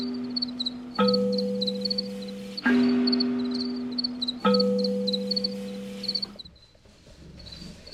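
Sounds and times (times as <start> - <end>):
many male crickets of a colony chirping at night: 0.0 - 6.7.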